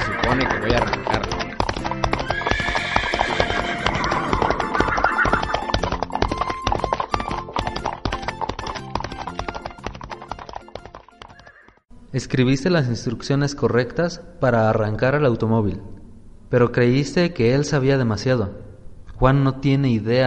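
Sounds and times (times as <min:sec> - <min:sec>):
horse whinnying: 0:00.0 - 0:09.5, 0:11.2 - 0:11.8
horse hooves clip-clopping: 0:00.0 - 0:11.9
speech: 0:12.2 - 0:15.9, 0:16.5 - 0:18.6, 0:19.2 - 0:20.2.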